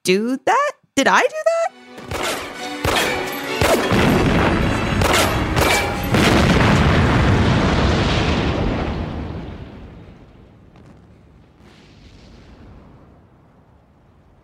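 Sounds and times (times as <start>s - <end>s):
speech: 0.0s - 1.8s
handgun shots: 2.0s - 3.9s, 5.0s - 6.1s
cop car exploding: 3.2s - 14.4s.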